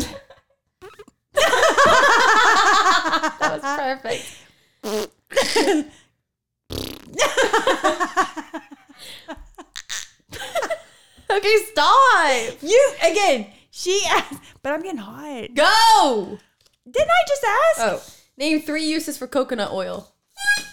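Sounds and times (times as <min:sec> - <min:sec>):
person blowing raspberries with mouth imitating farts: 0:00.8 - 0:02.0, 0:04.8 - 0:05.9, 0:06.7 - 0:07.7, 0:09.8 - 0:10.2
people laughing: 0:01.4 - 0:04.1, 0:07.2 - 0:09.7
speech: 0:11.4 - 0:20.1.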